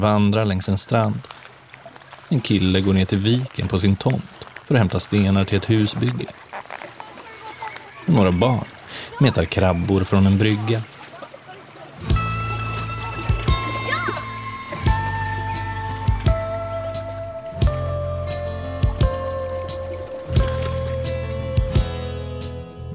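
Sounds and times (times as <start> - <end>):
speech: 0.0 - 1.5, 2.3 - 6.4, 8.1 - 10.9
salt seawater lapping against a hull at Styrsö in Gothenburg's southern archipelago: 0.0 - 22.3.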